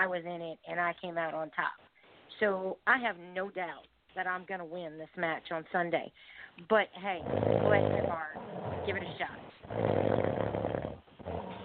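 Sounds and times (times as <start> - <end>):
speech: 0.0 - 10.4
loud raspy snoring sound effect drop: 7.2 - 11.6.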